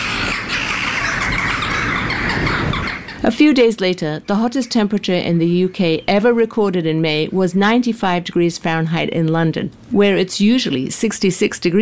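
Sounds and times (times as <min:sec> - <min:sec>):
jackdaws calling harshly in a dispute: 0:00.0 - 0:03.3
speech: 0:03.2 - 0:11.8.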